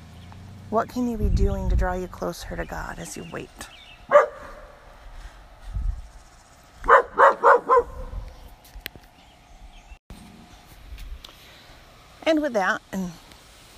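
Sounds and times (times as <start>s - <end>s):
speech: 0.7s - 4.2s, 12.3s - 13.2s
dog barking at a stray cat: 4.1s - 4.8s, 6.8s - 8.2s.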